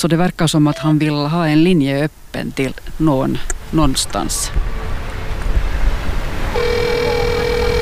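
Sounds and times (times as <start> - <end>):
speech: 0.0 - 4.7
rumbling outdoor wind: 0.0 - 7.8
outdoor traffic noise: 1.7 - 7.8
door intercom with a steady electronic buzz: 6.6 - 7.8.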